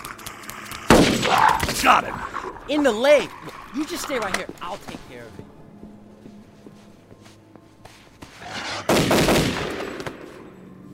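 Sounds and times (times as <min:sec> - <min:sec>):
speech: 0:01.8 - 0:05.4
rifle gunshots: 0:08.9 - 0:10.0.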